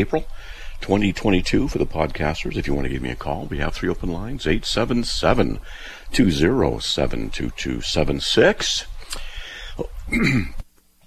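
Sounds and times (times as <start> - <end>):
speech: 0.0 - 10.6
throat clearing: 9.2 - 10.6
person coughing: 9.7 - 10.6.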